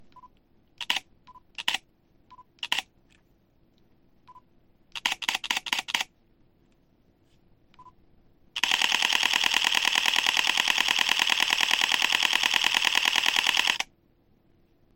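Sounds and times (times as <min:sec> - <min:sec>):
camera shutter: 0:00.8 - 0:01.8, 0:02.6 - 0:02.9, 0:05.0 - 0:06.1, 0:08.6 - 0:13.9.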